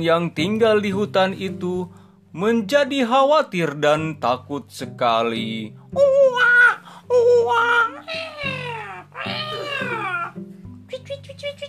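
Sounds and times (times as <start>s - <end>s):
speech: 0.0s - 8.6s, 11.0s - 11.6s
steady low musical backing: 0.0s - 11.6s
cat meowing in long drawn-out wails: 7.6s - 10.4s.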